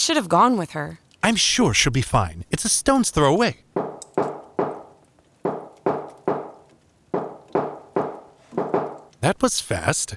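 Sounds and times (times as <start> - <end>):
speech: 0.0 - 3.6, 9.2 - 10.1
firm knocking on a door: 3.7 - 9.2.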